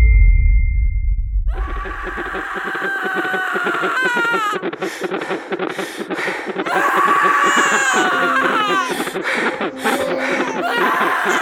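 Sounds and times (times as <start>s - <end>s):
low rumble: 0.0s - 2.2s
newborn baby girl crying: 1.5s - 4.6s, 6.6s - 11.4s
laughter: 2.1s - 11.4s.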